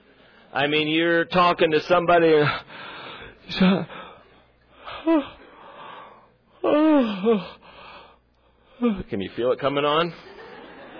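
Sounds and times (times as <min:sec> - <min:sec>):
speech: 0:00.5 - 0:02.7, 0:03.5 - 0:04.0, 0:05.0 - 0:05.3, 0:06.6 - 0:07.6, 0:08.8 - 0:10.4
drawn-out breathy yawns with voiced sliding groans: 0:04.9 - 0:05.5, 0:06.6 - 0:07.6, 0:08.8 - 0:09.1
laughter: 0:10.1 - 0:10.9.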